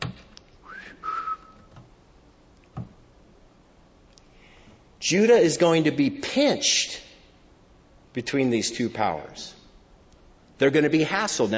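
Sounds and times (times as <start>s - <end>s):
faint noise: 0.0s - 11.5s
person whistling to summon: 0.6s - 1.7s
speech: 5.1s - 7.0s, 8.2s - 9.6s, 10.6s - 11.5s.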